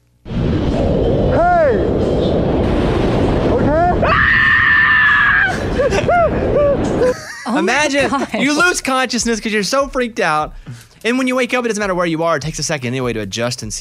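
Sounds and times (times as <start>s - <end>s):
constant roar of rushing wind during free fall: 0.3s - 7.3s
man screaming while free-falling: 3.8s - 6.8s
laughter: 5.5s - 8.8s
speech: 7.6s - 13.8s.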